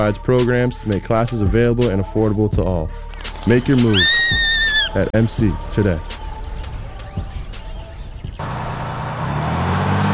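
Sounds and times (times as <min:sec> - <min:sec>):
speech: 0:00.0 - 0:04.2, 0:04.9 - 0:06.2
bus engine rumbling as the bus drives away: 0:08.1 - 0:10.1.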